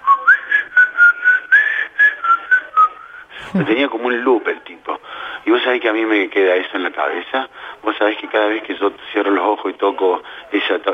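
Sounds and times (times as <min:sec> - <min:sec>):
person whistling a tune: 0:00.0 - 0:03.1
speech: 0:03.5 - 0:10.9.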